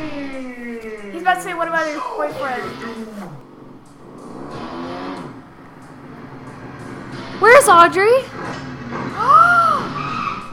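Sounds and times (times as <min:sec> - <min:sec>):
low rumble of road noise: 0:00.0 - 0:10.5
motorcycle tires skidding with a screech: 0:00.0 - 0:10.5
speech: 0:01.2 - 0:03.4, 0:07.4 - 0:08.4.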